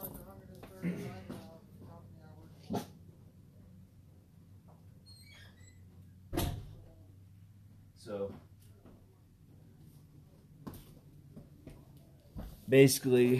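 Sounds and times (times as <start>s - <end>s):
low hum: 0.0s - 13.3s
door closing thud: 6.3s - 6.8s
speech: 12.7s - 13.3s.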